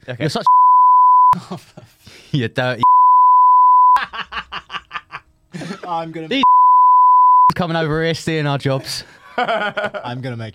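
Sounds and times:
speech: 0.1 - 0.7, 1.3 - 2.8, 5.9 - 6.5, 7.6 - 10.5
censor bleep tone: 0.5 - 1.4, 2.8 - 4.0, 6.4 - 7.5
laughter: 4.0 - 6.1, 9.0 - 10.1.

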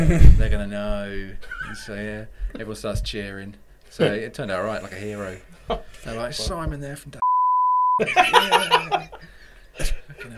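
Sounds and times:
speech: 0.0 - 7.2, 8.0 - 10.3
censor bleep tone: 7.2 - 8.0
people laughing: 8.0 - 10.3.

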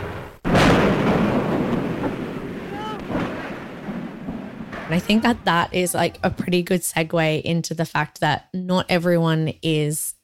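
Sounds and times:
hydrogen-filled airship crashing and burning, loud burst: 0.0 - 6.0
speech: 4.9 - 10.2.

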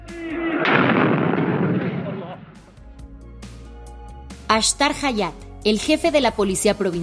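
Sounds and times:
loud explosion: 0.2 - 2.8
speech: 4.5 - 7.0.

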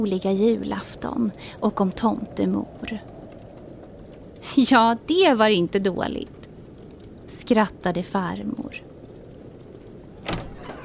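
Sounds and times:
speech: 0.0 - 3.1, 4.4 - 6.4, 7.5 - 8.9
door opening: 10.2 - 10.8.

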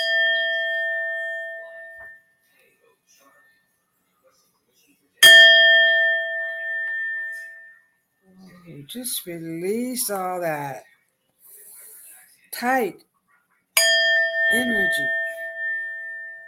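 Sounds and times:
Tibetan singing bowl ringing: 0.0 - 2.2, 5.2 - 7.8, 13.8 - 16.4
speech: 8.9 - 10.9, 12.6 - 13.1, 14.5 - 15.2.

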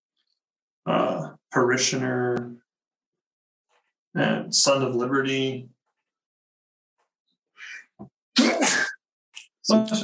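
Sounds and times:
speech: 0.8 - 2.6, 4.2 - 5.8, 9.7 - 10.0
person sneezing loudly: 8.4 - 9.0.

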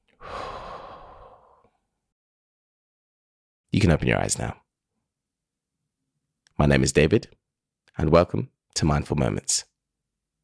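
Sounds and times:
slow deep breathing in and out: 0.1 - 1.9
speech: 3.8 - 4.6, 6.6 - 7.4, 8.0 - 9.7.

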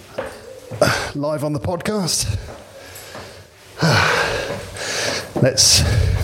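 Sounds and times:
heavy gasping breaths after climbing many stairs: 0.7 - 1.2, 2.2 - 6.2
speech: 1.2 - 2.6, 5.4 - 6.2.

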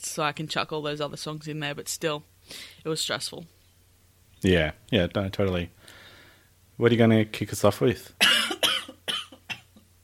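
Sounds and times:
speech: 0.1 - 3.6, 4.4 - 6.0, 6.8 - 8.2
person coughing: 8.2 - 9.8.

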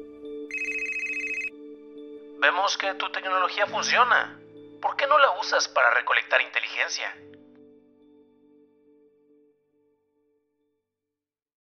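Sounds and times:
electronic telephone ringing: 0.5 - 1.5
speech: 2.4 - 7.3.

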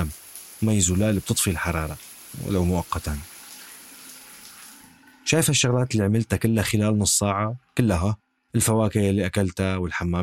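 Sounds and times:
water running from a tap: 0.0 - 5.5
speech: 0.6 - 3.3, 5.3 - 10.2.

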